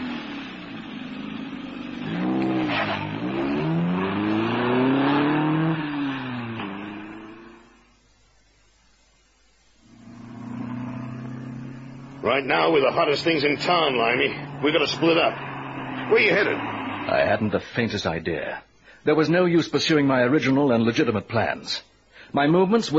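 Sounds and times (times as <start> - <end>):
car engine starting, revving and accelerating: 0.0 - 8.0, 9.8 - 17.6
speech: 12.4 - 15.5, 16.1 - 22.9.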